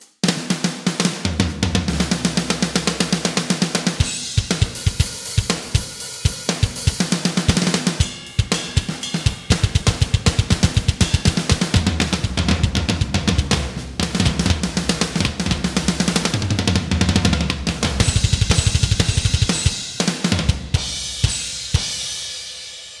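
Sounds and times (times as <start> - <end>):
enhanced drum kit: 0.0 - 22.9.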